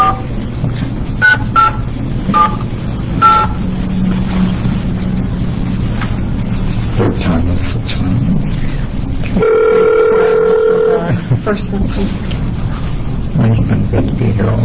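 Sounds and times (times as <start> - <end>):
room noise: 0.0 - 14.6
steady telephone dial tone: 9.4 - 11.0.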